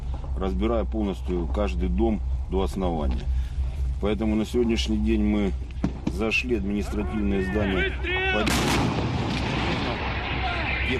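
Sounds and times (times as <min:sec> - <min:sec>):
steady rumbling wash of noise: 0:00.0 - 0:10.9
speech: 0:00.4 - 0:03.4, 0:04.0 - 0:09.2
gunshot-like blast amid combat under artillery fire: 0:08.4 - 0:10.6.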